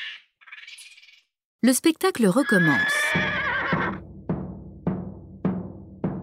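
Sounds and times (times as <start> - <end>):
speech: 1.6 - 3.3
horse neighing: 2.4 - 4.0.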